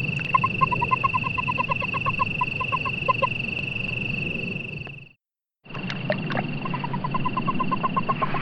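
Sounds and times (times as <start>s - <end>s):
Hot Creek toad rapid chirping pulses: 0.0s - 5.1s, 6.6s - 8.3s
rumbling background: 0.0s - 5.1s
steady high hum: 0.0s - 5.1s.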